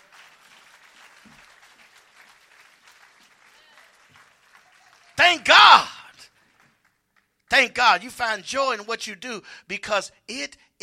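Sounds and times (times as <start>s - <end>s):
audience clapping: 0.0s - 7.5s
speech: 5.2s - 5.9s, 7.5s - 10.8s.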